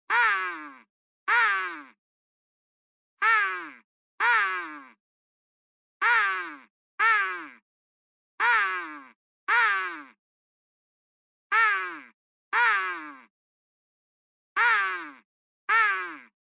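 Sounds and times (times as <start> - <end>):
synthetic crow call: 0.1 - 2.0, 3.2 - 5.0, 6.0 - 7.6, 8.4 - 10.2, 11.5 - 13.3, 14.6 - 16.4.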